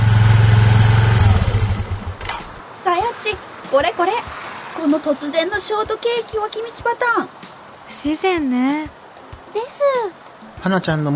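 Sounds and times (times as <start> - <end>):
moped engine running during a ride from a shrine: 0.0 - 2.6
speech: 3.7 - 11.1.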